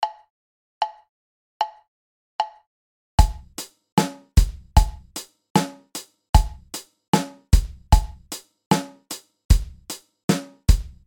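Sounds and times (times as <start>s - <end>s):
linear drum pattern: 3.2s - 11.0s.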